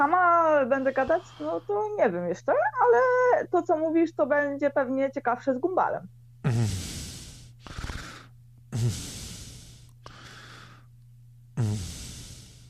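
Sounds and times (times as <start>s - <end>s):
speech: 0.0s - 6.8s
faint low hum: 0.0s - 12.6s
heavy panting breaths into microphone: 0.8s - 1.9s, 6.5s - 10.9s, 11.6s - 12.6s.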